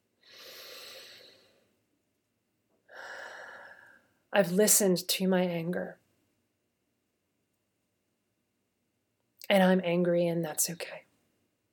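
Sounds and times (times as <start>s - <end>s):
deep breath: 0.2s - 1.8s, 2.9s - 4.2s
speech: 4.3s - 6.0s, 9.5s - 11.1s.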